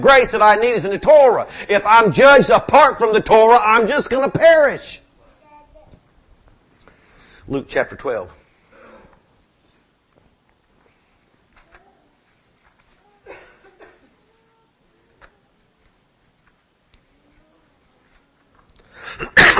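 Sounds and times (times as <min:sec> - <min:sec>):
speech: 0:00.0 - 0:05.0, 0:07.5 - 0:08.4
faint shuffles: 0:08.4 - 0:18.9
person coughing: 0:13.3 - 0:14.1, 0:19.0 - 0:19.5.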